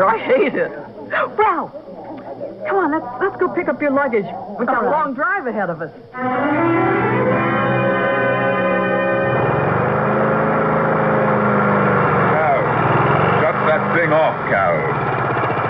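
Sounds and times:
speech: 0.0s - 2.0s, 2.6s - 7.2s, 14.0s - 15.1s
lawn mower engine running: 8.2s - 15.6s.

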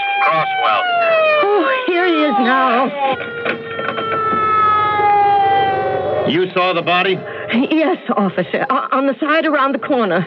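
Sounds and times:
siren wailing: 0.0s - 7.9s
speech: 0.2s - 3.8s, 6.3s - 10.2s.

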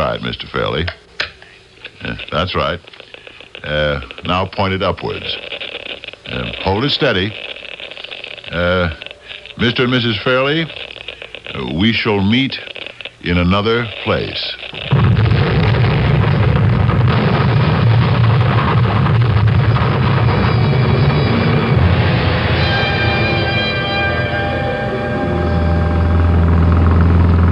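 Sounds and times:
speech: 0.2s - 1.1s, 2.0s - 7.6s, 8.5s - 9.0s, 9.6s - 10.9s, 11.5s - 15.1s
truck engine rumbling during a ride: 15.0s - 27.4s.

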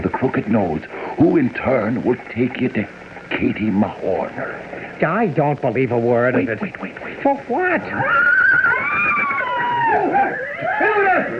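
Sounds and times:
speech: 0.1s - 8.4s
several panicking horses whinnying in alarm: 7.9s - 11.3s.

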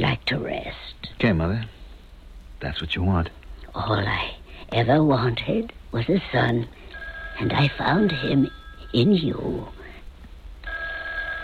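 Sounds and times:
low hum: 0.0s - 11.4s
speech: 0.1s - 1.8s, 2.6s - 6.8s, 7.4s - 9.8s
telephone ringing: 6.9s - 9.5s, 10.6s - 11.4s.

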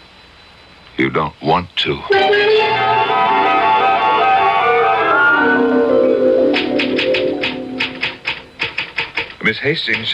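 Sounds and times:
speech: 1.0s - 3.4s, 9.5s - 10.1s
sustained warbling tonal sound: 2.1s - 8.5s
typewriter keystrokes: 6.6s - 10.1s.

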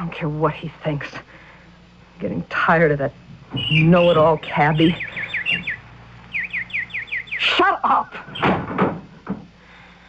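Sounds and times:
speech: 0.0s - 1.5s, 2.2s - 5.6s, 7.6s - 8.6s
nightingale chirping: 3.5s - 8.8s.

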